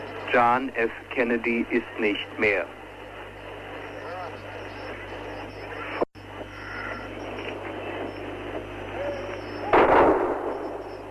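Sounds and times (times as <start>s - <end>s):
quiet steady hum: 0.0s - 11.0s
speech: 0.3s - 2.8s
murmuring voices: 3.6s - 6.0s, 8.8s - 9.8s
gun salute fired at a state funeral in a cemetery: 9.7s - 10.8s.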